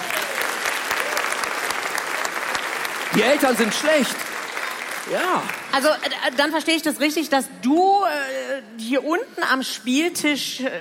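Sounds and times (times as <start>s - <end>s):
audience applause: 0.0s - 6.4s
speech: 3.1s - 4.3s, 5.1s - 10.8s.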